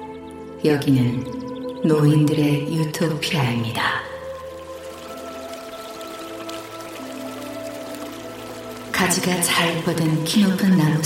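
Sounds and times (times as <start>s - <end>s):
speech: 0.6s - 4.1s, 9.1s - 11.0s
clear water flowing in a stream crossing a park: 3.1s - 11.0s.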